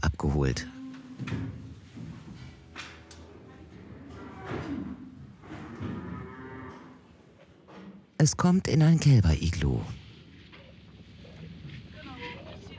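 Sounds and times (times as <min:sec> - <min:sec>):
speech: 0:00.2 - 0:01.5, 0:08.2 - 0:10.0
dairy cows mooing in a cattle barn: 0:00.7 - 0:01.6, 0:02.2 - 0:07.0.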